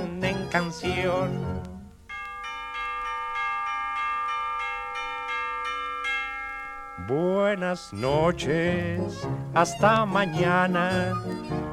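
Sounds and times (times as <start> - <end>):
speech: 0.5 - 1.6, 7.1 - 11.7
bells chiming the hour: 2.1 - 9.3.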